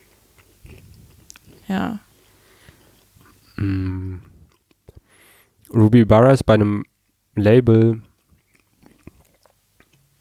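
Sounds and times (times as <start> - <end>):
person chewing crunchy food: 0.0 - 5.7, 7.8 - 10.1
speech: 1.7 - 2.1, 3.6 - 4.3, 5.7 - 8.1.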